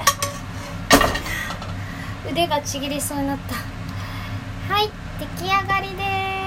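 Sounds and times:
kitchenware clatter as fried eggplant is shifted from a heavy frying pan onto a plate: 0.0s - 1.8s
speech: 2.2s - 3.8s, 4.7s - 6.3s.

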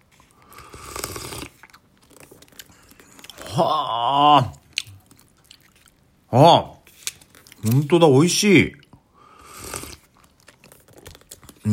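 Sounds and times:
slurping noodle soup broth with ichimi chili pepper: 0.0s - 3.4s, 9.2s - 10.6s
small mouth and chewing sounds: 0.2s - 3.6s, 4.4s - 6.2s, 7.0s - 7.9s, 9.7s - 11.7s
speech: 3.6s - 4.6s, 6.3s - 6.8s, 7.6s - 8.8s.

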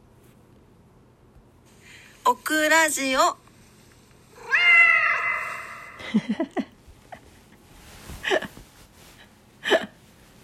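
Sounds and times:
speech: 2.3s - 3.4s, 6.1s - 6.6s
cat meowing with echo: 4.4s - 6.0s
laughter: 6.0s - 6.7s.

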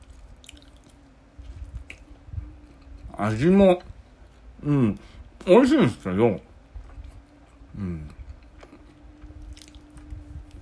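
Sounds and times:
chewing a convenience-store ham and egg sandwich: 0.0s - 3.1s, 6.8s - 10.6s
speech: 3.2s - 3.9s, 4.6s - 6.5s, 7.8s - 8.2s.

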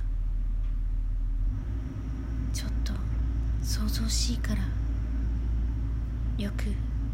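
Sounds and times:
low rumble of construction machinery outside: 0.0s - 7.1s
speech: 3.7s - 4.8s, 6.4s - 6.9s.

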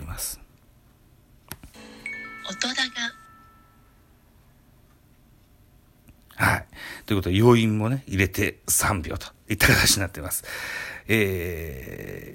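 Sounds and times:
bright struck chime of a radio sound logo: 1.8s - 4.2s
speech: 2.6s - 3.2s, 7.1s - 12.3s.

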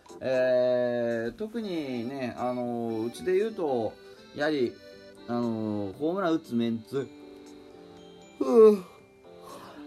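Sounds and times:
speech: 0.2s - 0.6s, 1.3s - 7.2s, 8.4s - 8.9s
person yawning: 8.4s - 9.8s.

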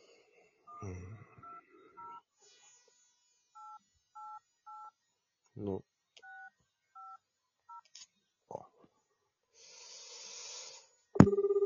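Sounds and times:
faint noise: 0.0s - 11.6s
speech: 5.6s - 5.9s
telephone keypad tones dialing a customer service center: 11.2s - 11.6s.

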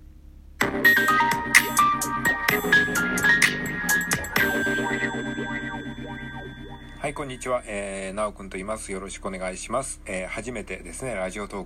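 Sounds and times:
music: 0.6s - 7.4s
talk-radio show jingle: 1.0s - 7.7s
chiming bell-like tones: 3.9s - 7.5s
speech: 7.1s - 11.6s.

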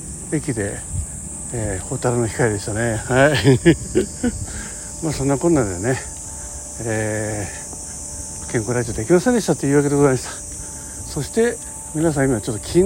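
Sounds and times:
insects chirping outdoors: 0.0s - 12.8s
speech: 0.3s - 6.1s, 6.8s - 7.6s, 8.5s - 10.4s, 11.1s - 12.8s
man laughing: 2.8s - 6.1s.

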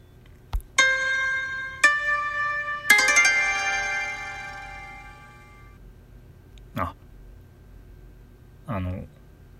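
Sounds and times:
bright electronic automatic door entry chime: 0.8s - 5.8s.

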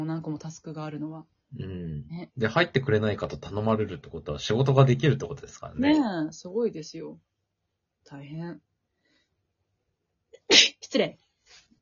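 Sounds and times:
speech: 0.0s - 7.3s, 8.0s - 8.7s, 10.5s - 11.2s
single sharp sneeze: 10.4s - 10.8s.

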